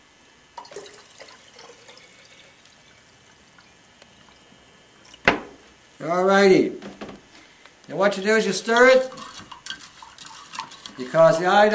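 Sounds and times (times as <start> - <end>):
distilled water pouring into a container: 0.6 - 3.7
speech: 6.0 - 6.9, 7.9 - 9.2, 11.1 - 11.7.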